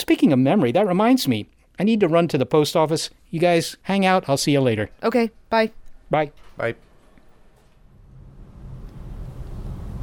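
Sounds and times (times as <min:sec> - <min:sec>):
speech: 0:00.0 - 0:06.9
car driving past on street: 0:07.9 - 0:10.0.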